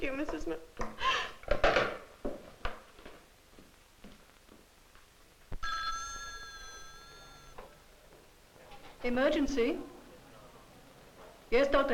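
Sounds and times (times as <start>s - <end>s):
speech: 0.0s - 1.1s, 9.0s - 9.9s, 11.5s - 11.9s
old-fashioned telephone bell ringing: 5.6s - 7.7s.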